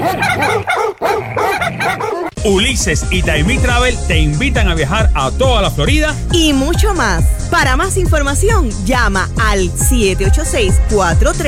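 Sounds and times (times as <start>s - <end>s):
dog barking and yipping: 0.0s - 2.4s
speech: 2.4s - 11.4s.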